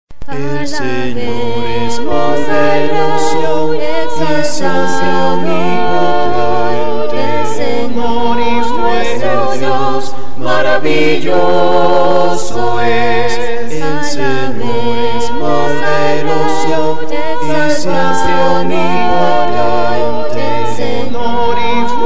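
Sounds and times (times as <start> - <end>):
a cappella hymn singing: 0.2 - 22.0.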